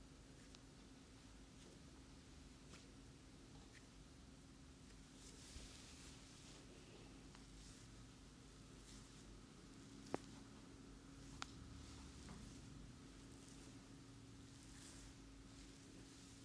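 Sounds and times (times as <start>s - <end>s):
soft rubbing of a head and neck massage: 0.2s - 16.4s
light taps of a head and neck massage: 10.0s - 10.5s.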